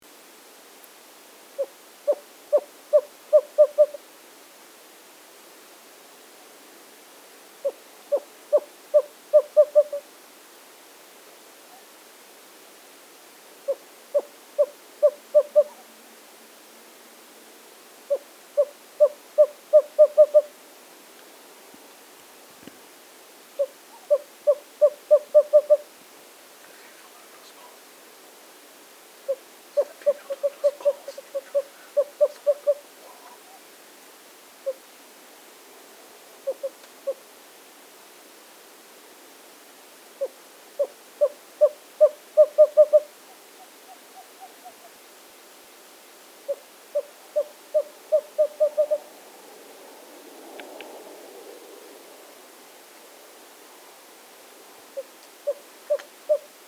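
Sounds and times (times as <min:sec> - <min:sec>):
Western Screech-Owl: 0:01.6 - 0:04.0, 0:07.6 - 0:10.0, 0:13.7 - 0:15.8, 0:18.1 - 0:20.5, 0:23.6 - 0:25.9, 0:29.3 - 0:33.6, 0:36.4 - 0:37.2, 0:40.2 - 0:44.9, 0:46.5 - 0:49.1.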